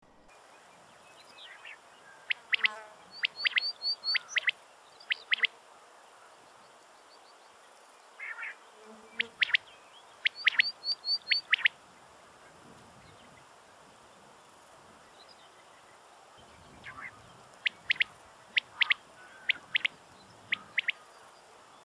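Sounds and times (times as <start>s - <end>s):
Coturnix coturnix calling: 1.6s - 5.5s, 8.2s - 8.6s, 9.2s - 11.8s, 16.8s - 21.0s.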